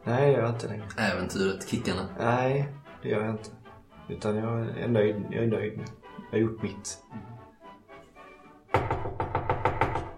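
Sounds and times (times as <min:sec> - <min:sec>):
speech: 0:00.1 - 0:07.3
eager knocking on a front door: 0:08.7 - 0:10.1.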